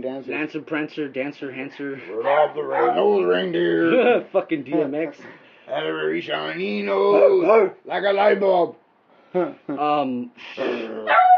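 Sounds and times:
speech: 0:00.0 - 0:11.2
man imitating a barking dog: 0:02.1 - 0:04.0, 0:06.7 - 0:07.9, 0:10.6 - 0:11.3.

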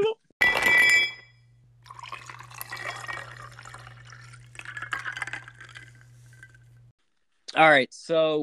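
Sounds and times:
sharp ringing clink of glass: 0:00.4 - 0:06.8
liquid pouring and sloshing into a glass: 0:01.8 - 0:06.9
speech: 0:07.6 - 0:08.4.

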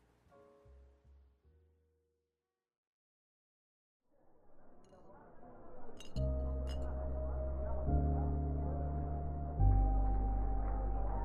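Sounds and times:
murmur of chatter in a seedy little bar: 0:04.6 - 0:11.2
glasses clinking in a seedy little bar: 0:06.0 - 0:06.9
loud chord-like music: 0:06.2 - 0:11.2.

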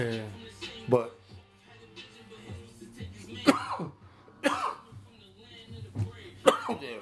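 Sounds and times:
speech: 0:00.0 - 0:01.2
harsh coughing fit: 0:03.4 - 0:04.8, 0:06.4 - 0:07.0.

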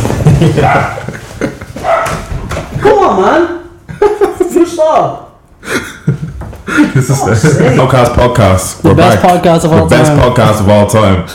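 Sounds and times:
laughter: 0:00.1 - 0:02.0, 0:03.9 - 0:04.8, 0:05.6 - 0:08.2
speech: 0:00.4 - 0:01.0, 0:02.8 - 0:03.6, 0:04.8 - 0:05.9, 0:06.7 - 0:11.3
dog barking with whiny yelping edge: 0:00.6 - 0:01.1, 0:01.8 - 0:02.3.

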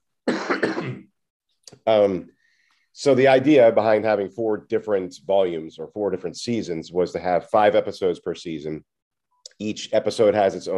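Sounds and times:
person clearing throat: 0:00.2 - 0:01.2
speech: 0:01.8 - 0:02.4, 0:03.0 - 0:08.9, 0:09.6 - 0:10.7.

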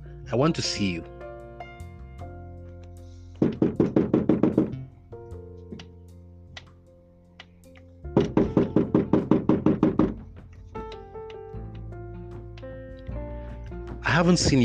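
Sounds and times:
soft sustained music: 0:00.0 - 0:14.6
speech: 0:00.3 - 0:01.1, 0:14.2 - 0:14.6
rapid loud knocking on a door: 0:03.4 - 0:04.8, 0:08.2 - 0:11.0.

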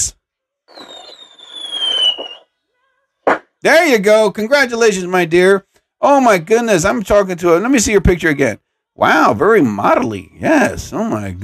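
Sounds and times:
firework burst: 0:00.7 - 0:02.4
firework rocket launched for a birthday whistling: 0:00.7 - 0:02.6
speech: 0:03.6 - 0:11.4.

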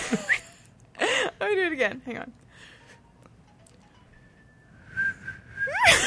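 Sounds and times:
speech: 0:00.1 - 0:00.4, 0:01.4 - 0:02.4
person attempting to whistle: 0:04.6 - 0:05.9.

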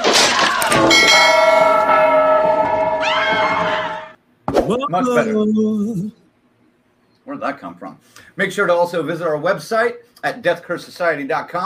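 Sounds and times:
bell ringing: 0:00.7 - 0:03.6
speech: 0:04.7 - 0:06.2, 0:07.3 - 0:11.6.

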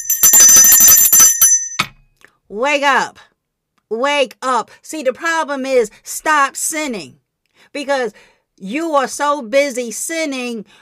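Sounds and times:
small bell ringing rapidly: 0:00.0 - 0:02.0
speech: 0:02.5 - 0:03.2, 0:03.9 - 0:10.7.

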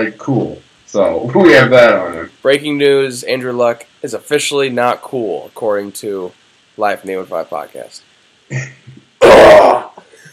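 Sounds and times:
speech: 0:00.0 - 0:09.9
loud rough throat clearing: 0:08.5 - 0:10.1
quieter trailing breath: 0:10.0 - 0:10.3.

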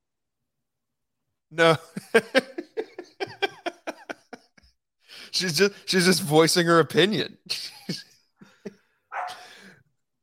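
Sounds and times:
speech: 0:01.5 - 0:02.5, 0:05.3 - 0:08.0
laughter: 0:01.6 - 0:04.7, 0:07.5 - 0:08.8
dog barking: 0:09.1 - 0:09.5.

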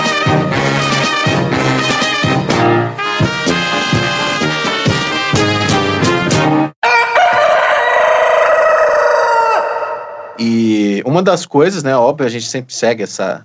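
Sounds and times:
upbeat football club anthem playing: 0:00.0 - 0:06.8
rooster crowing: 0:06.8 - 0:10.4
speech: 0:11.2 - 0:13.4.

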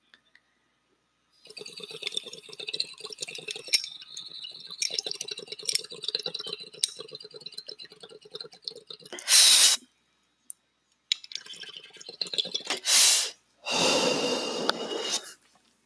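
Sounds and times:
water bubbling and gurgling through a water rig as someone takes a dab: 0:01.4 - 0:09.5, 0:11.3 - 0:12.9
sharp hissing bursts of air: 0:09.2 - 0:09.8, 0:12.8 - 0:13.4
long loud exhale: 0:12.8 - 0:15.4.

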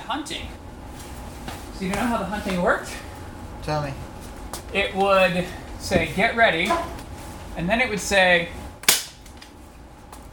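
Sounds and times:
speech: 0:00.1 - 0:00.6, 0:01.8 - 0:03.0, 0:03.6 - 0:04.1, 0:04.7 - 0:07.0, 0:07.6 - 0:08.6
gunshot sound effect: 0:08.9 - 0:09.2.

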